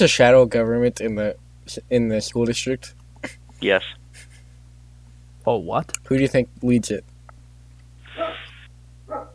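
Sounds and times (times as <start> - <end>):
speech: 0.0 - 4.0, 5.5 - 7.1
low steady hum: 0.0 - 9.3
dog barking excitedly: 8.1 - 8.5, 9.1 - 9.3.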